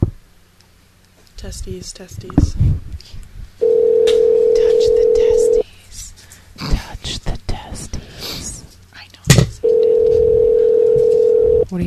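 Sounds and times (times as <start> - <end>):
speech: 1.4 - 3.2
ringback tone of an unanswered outgoing phone call: 3.6 - 5.6, 9.6 - 11.6
people murmuring and talking quietly: 3.6 - 8.7.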